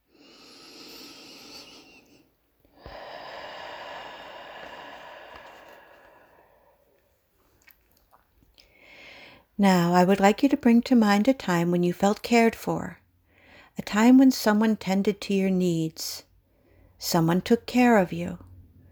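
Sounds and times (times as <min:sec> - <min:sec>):
slow exhale through pursed lips: 0:00.0 - 0:07.1
speech: 0:09.6 - 0:13.0, 0:13.8 - 0:16.3, 0:17.0 - 0:18.4.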